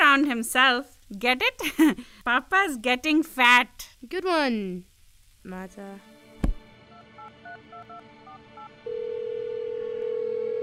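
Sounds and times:
speech: 0.2s - 6.1s
steady unbroken phone ringing tone: 6.9s - 10.6s.

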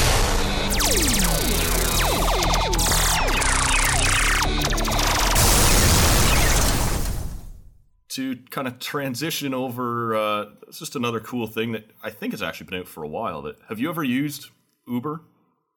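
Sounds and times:
descending laser zap sound effects: 0.0s - 7.7s
rumbling explosion sound effect: 5.3s - 7.8s
speech: 8.2s - 15.3s.

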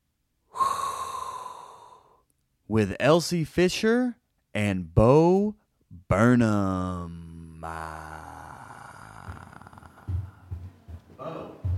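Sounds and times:
person inhaling a hot breath: 0.5s - 2.3s
speech: 2.7s - 8.2s.

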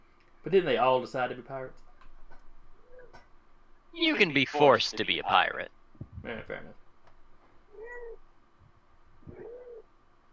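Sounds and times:
soft hum: 0.0s - 10.3s
speech: 0.4s - 1.9s, 3.9s - 6.8s
cat meowing: 7.7s - 8.2s, 9.3s - 9.8s.

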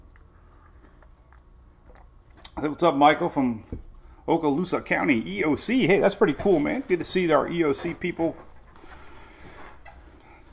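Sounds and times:
person sipping coffee: 0.0s - 2.6s
soft wet mouth sounds: 0.0s - 2.6s
speech: 2.6s - 8.5s.

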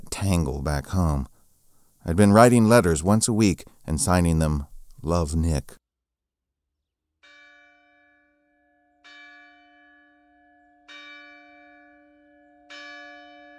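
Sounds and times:
speech: 0.2s - 1.3s, 2.0s - 5.8s
church bell tolling in a village along the shore: 7.2s - 13.5s.

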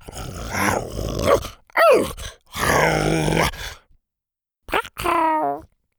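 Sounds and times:
voice imitating a T-Rex growling: 0.0s - 3.9s, 4.7s - 5.7s.

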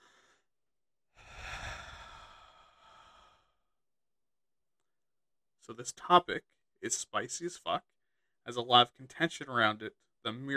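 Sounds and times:
deep breath: 0.0s - 0.5s, 1.2s - 3.8s
speech: 5.7s - 10.5s.

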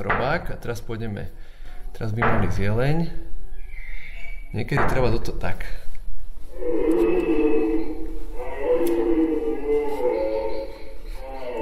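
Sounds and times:
speech: 0.0s - 3.3s, 4.5s - 5.9s, 6.6s - 7.4s
red deer stag roaring during rut: 6.5s - 11.6s.

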